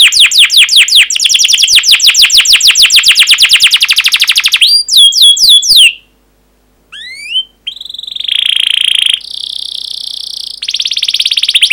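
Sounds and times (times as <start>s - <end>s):
canary training song: 0.0s - 6.2s, 6.9s - 11.7s.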